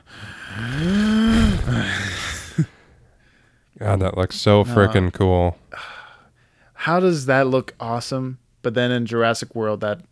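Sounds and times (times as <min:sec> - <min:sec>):
dinosaur breathing sound effect made from a man's breathing mixed with other noises: 0:00.0 - 0:02.8
speech: 0:00.5 - 0:00.9, 0:03.8 - 0:06.0, 0:06.8 - 0:10.1.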